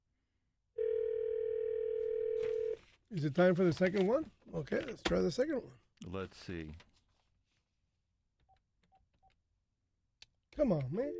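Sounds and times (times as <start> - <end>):
telephone dial tone while placing a call: 0.8 - 2.8
speech: 3.1 - 6.9, 10.6 - 11.1.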